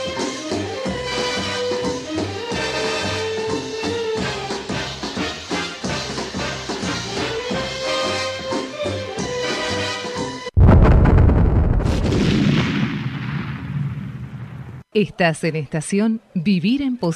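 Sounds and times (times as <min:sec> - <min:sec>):
upbeat music: 0:00.0 - 0:10.5
sharp crack: 0:10.6 - 0:14.8
explosion effect of a self-destructing tape: 0:10.6 - 0:14.9
speech: 0:15.0 - 0:17.1.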